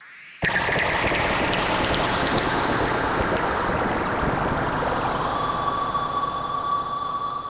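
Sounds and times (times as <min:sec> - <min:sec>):
long decaying sound effect: 0:00.4 - 0:07.5.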